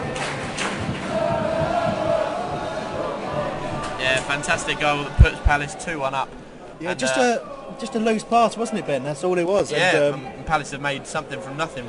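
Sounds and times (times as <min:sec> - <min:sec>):
large football crowd singing a terrace chant: 0:00.0 - 0:08.3
speech: 0:04.0 - 0:11.8.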